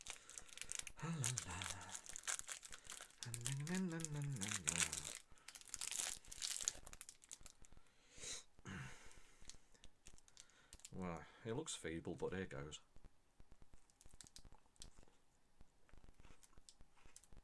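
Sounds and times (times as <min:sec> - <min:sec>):
Toffee Crisp chocolate bar wrapper crinkling as it is torn open: 0:00.0 - 0:07.6, 0:10.0 - 0:10.9
person murmuring and humming: 0:00.9 - 0:02.2, 0:03.2 - 0:05.2
speech: 0:11.5 - 0:12.9.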